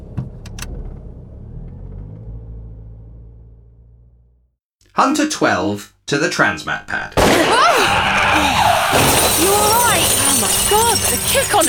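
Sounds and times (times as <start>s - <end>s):
car engine idling: 0.0s - 4.6s
speech: 5.0s - 9.6s, 10.4s - 11.6s.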